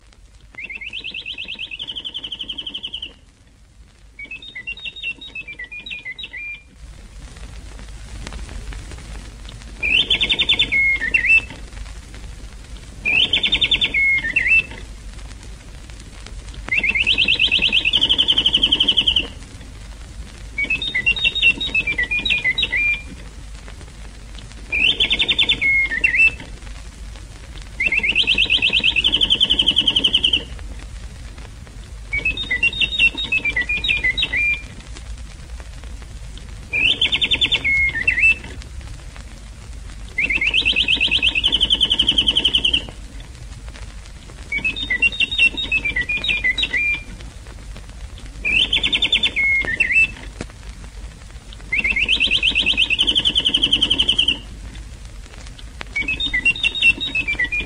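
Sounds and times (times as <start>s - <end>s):
radio interval signal of bird song: 0.6s - 3.2s, 4.2s - 6.7s, 9.8s - 11.6s, 13.0s - 14.8s, 16.6s - 19.4s, 20.6s - 23.2s, 24.7s - 26.5s, 27.8s - 30.5s, 32.1s - 34.7s, 36.7s - 38.6s, 40.2s - 43.0s, 44.5s - 47.1s, 48.4s - 50.3s, 51.7s - 54.5s, 56.0s - 57.6s.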